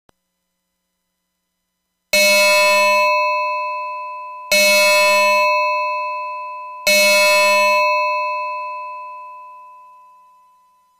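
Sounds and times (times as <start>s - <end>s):
bell-like synth tone from a PIC32 sound synth: 2.2s - 10.9s.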